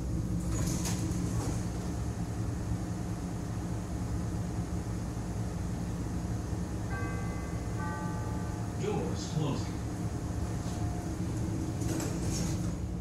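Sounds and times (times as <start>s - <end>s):
commuter train doors clattering and sliding: 0.0s - 4.3s, 9.8s - 12.9s
commuter train rumbling: 0.0s - 12.9s.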